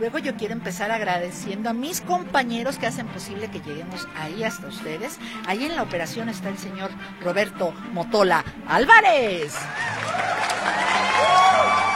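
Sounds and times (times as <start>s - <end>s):
speech: 0.0s - 10.8s
crowd applauding and cheering: 9.4s - 11.9s
whistles and whoops: 9.7s - 11.9s.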